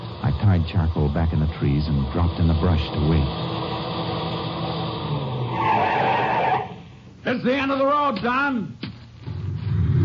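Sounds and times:
car engine roaring on a rough road at night: 0.0 - 7.2, 9.2 - 10.0
speech: 0.4 - 3.7, 7.2 - 8.8
car tires screeching in a loud skid: 2.0 - 7.0.

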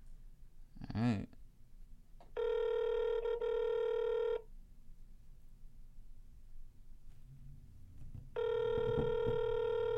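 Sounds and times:
faint noise on the phone line: 0.0 - 9.9
outgoing phone call ringback tones: 2.4 - 4.4, 8.4 - 9.9.

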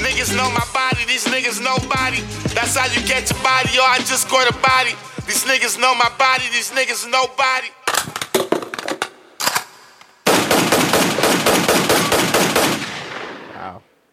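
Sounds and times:
speech: 0.2 - 8.0
gunshot sound effects: 9.4 - 13.8.

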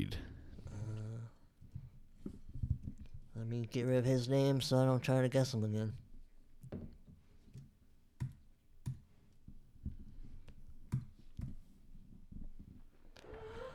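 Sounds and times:
speech: 0.0 - 0.3, 3.4 - 6.0
chair creaking and squeaking as someone shifts in it: 13.0 - 13.7.

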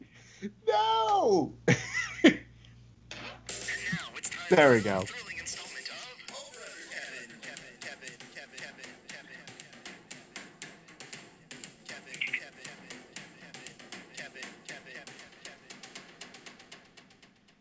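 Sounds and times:
speech: 0.4 - 1.9, 4.5 - 5.3
laughter: 1.7 - 2.4, 3.7 - 7.6
homemade song with rapid percussive beat and vocal-like tones: 3.5 - 17.5.

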